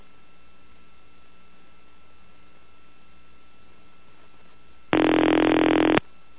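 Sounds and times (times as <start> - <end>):
Bell System telephone ringing: 4.9 - 6.0.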